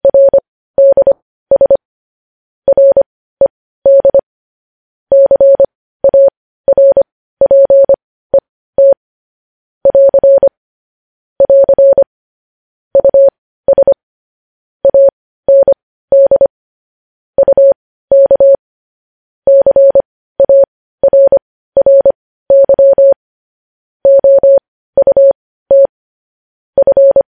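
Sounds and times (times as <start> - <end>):
Morse code beeps: 0.0 - 1.8, 2.7 - 4.2, 5.1 - 9.0, 9.8 - 10.5, 11.4 - 12.1, 13.0 - 14.0, 14.8 - 16.5, 17.4 - 18.6, 19.5 - 23.2, 24.0 - 25.9, 26.8 - 27.3.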